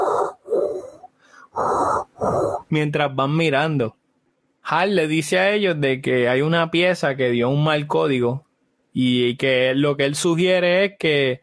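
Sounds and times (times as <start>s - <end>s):
people outside breathing heavily while searching for an antenna: 0.0s - 2.7s
speech: 2.7s - 4.0s, 4.7s - 8.4s, 9.0s - 11.4s.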